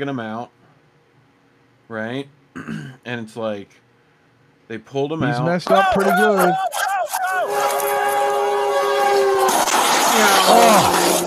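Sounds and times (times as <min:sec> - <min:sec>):
speech: 0:00.0 - 0:00.6, 0:01.9 - 0:03.8, 0:04.7 - 0:06.8, 0:10.2 - 0:11.2
train horn blaring: 0:07.4 - 0:09.6.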